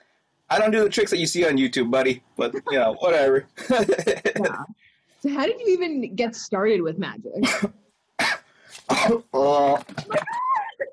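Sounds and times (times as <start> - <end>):
speech: 0.5 - 10.4
laughter: 2.4 - 4.6, 9.4 - 10.9
person coughing harshly: 3.6 - 4.6, 7.4 - 10.2.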